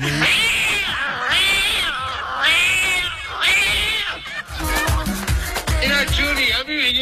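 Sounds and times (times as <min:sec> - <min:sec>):
laughter: 0:00.0 - 0:06.4
cat yowling: 0:00.1 - 0:05.2.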